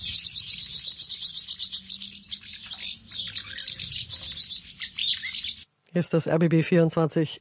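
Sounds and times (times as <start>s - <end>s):
house martins twittering: 0.0s - 5.7s
speech: 6.0s - 7.3s.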